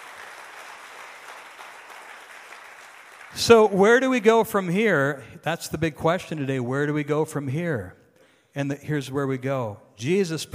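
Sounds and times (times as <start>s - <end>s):
worship congregation applauding: 0.0s - 4.0s
speech: 3.3s - 10.5s.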